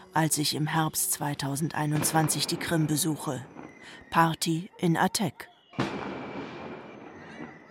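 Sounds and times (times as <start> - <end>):
speech: 0.2 - 6.1
firework rocket explosion at night in Gursuf on the Black Sea: 5.8 - 7.5.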